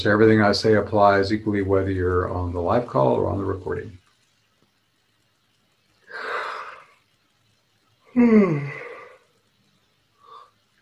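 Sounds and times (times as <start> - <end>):
speech: 0.0 - 4.0, 8.2 - 8.8
breathy intake of air: 6.0 - 7.0, 8.2 - 9.4, 10.1 - 10.7
drawn-out voiced yawn sliding downward in pitch: 8.1 - 9.3.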